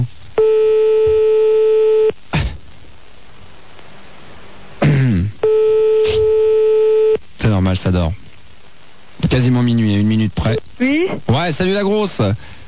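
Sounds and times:
telephone ring tone heard from the caller's end: 0.4s - 2.1s, 5.4s - 7.2s
speech: 7.7s - 8.2s, 9.3s - 12.6s.

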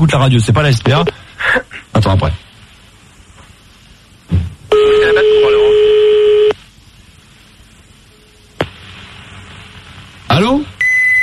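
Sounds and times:
speech: 0.0s - 2.4s
fax machine tone answering a phone call: 4.7s - 6.6s, 10.8s - 11.2s.

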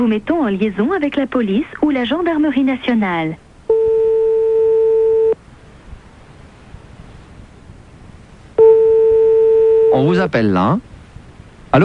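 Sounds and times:
speech: 0.0s - 3.4s, 10.0s - 10.9s
telephone busy signal: 3.7s - 5.4s, 8.6s - 10.1s.

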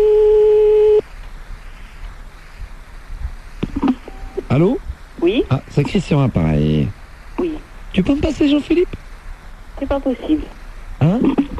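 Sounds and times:
telephone line buzzing tone while redialing a number: 0.0s - 1.0s, 3.8s - 4.5s
faint low noise: 0.0s - 11.5s
speech: 4.6s - 7.0s, 8.0s - 9.0s, 9.8s - 11.4s.

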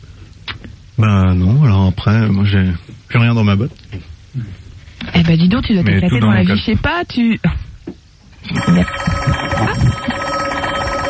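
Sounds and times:
busy low-pitched noise: 0.0s - 11.0s
speech: 1.0s - 4.6s, 5.3s - 7.6s, 8.4s - 10.1s
telephone ringing with a warbling electronic ring: 8.4s - 11.0s.

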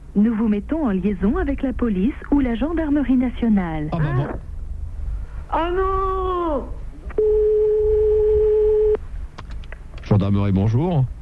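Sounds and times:
faint low noise: 0.0s - 11.2s
speech: 0.2s - 4.5s, 5.5s - 7.4s, 10.1s - 11.2s
telephone ringback tone on an unanswered call: 7.2s - 9.0s.

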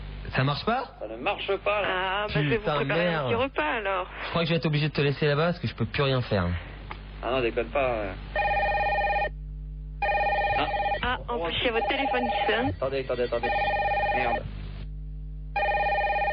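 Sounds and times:
speech: 0.4s - 8.5s, 11.6s - 14.6s
telephone ringing in electronic bursts: 8.4s - 9.3s, 10.0s - 14.5s, 15.6s - 16.3s.

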